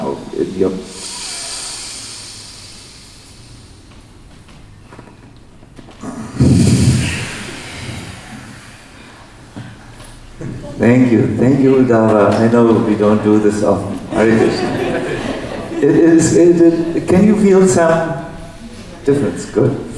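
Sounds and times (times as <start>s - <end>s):
speech: 0.2s - 1.1s, 10.8s - 14.8s, 15.8s - 18.2s, 19.1s - 19.9s
person making a full exhale during a guided breathing exercise: 0.8s - 3.9s, 6.0s - 10.1s
laughter: 11.7s - 17.6s.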